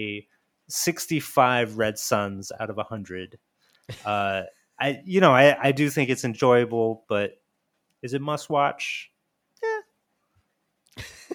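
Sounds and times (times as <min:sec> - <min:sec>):
speech: 0:00.0 - 0:07.4, 0:08.0 - 0:09.1
human voice imitating a cat meow: 0:09.6 - 0:09.9.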